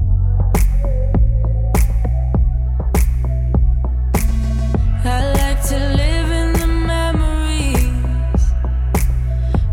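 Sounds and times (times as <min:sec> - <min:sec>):
song with thumping beat and deep bass: 0:00.0 - 0:09.7.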